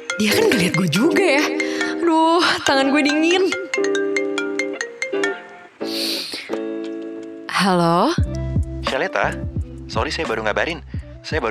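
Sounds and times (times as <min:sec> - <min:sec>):
mobile phone ringtone of an incoming call: 0:00.0 - 0:06.0
speech: 0:00.2 - 0:04.0, 0:07.6 - 0:11.5.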